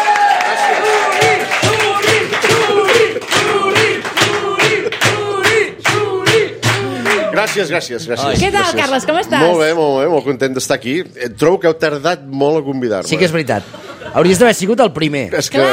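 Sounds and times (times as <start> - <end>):
people cheering and shouting: 0.0 - 7.7
large audience clapping: 0.0 - 8.5
speech: 7.6 - 15.7.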